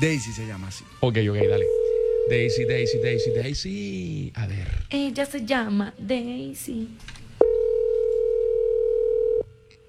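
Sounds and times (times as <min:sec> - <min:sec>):
speech: 0:00.0 - 0:07.2
ringing tone on an outgoing telephone call: 0:01.4 - 0:03.5, 0:07.4 - 0:09.5.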